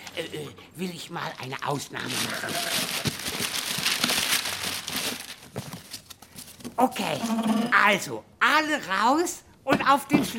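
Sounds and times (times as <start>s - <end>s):
speech: 0.2s - 3.1s, 6.8s - 10.3s
wrapping paper crinkling as a wrapped present is unwrapped: 1.2s - 6.7s.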